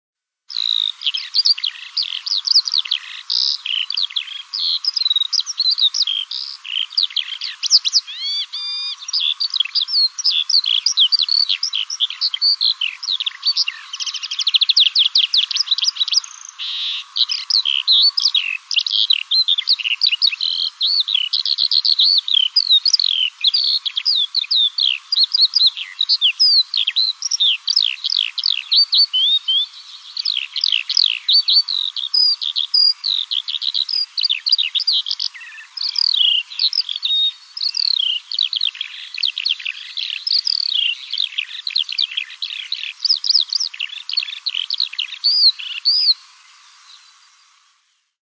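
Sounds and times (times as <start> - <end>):
Eurasian skylark singing: 0.5 - 46.2.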